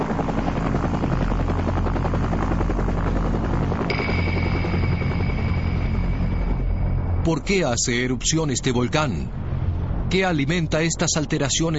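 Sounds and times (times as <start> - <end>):
helicopter rotor thumping: 0.0 - 7.2
high helicopter turbine whine: 0.0 - 10.1
speech: 7.3 - 9.4, 10.1 - 11.7.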